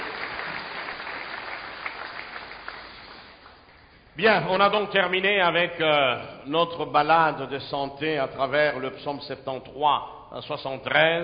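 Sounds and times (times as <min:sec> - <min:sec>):
church congregation applauding: 0:00.0 - 0:04.0
speech: 0:04.2 - 0:11.2.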